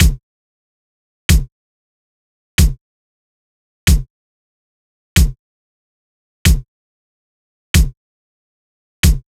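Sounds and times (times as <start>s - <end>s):
Latin kick drum loop: 0.0s - 0.2s, 2.6s - 2.8s, 3.9s - 4.1s, 5.2s - 5.4s, 7.8s - 8.0s, 9.0s - 9.2s.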